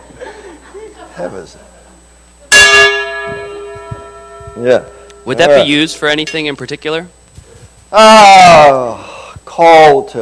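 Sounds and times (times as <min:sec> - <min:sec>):
laughter: 0:00.0 - 0:02.0
speech: 0:01.2 - 0:01.8, 0:04.6 - 0:07.2, 0:07.9 - 0:10.2
handmade Burmese gong from Chin state struck: 0:02.5 - 0:05.6.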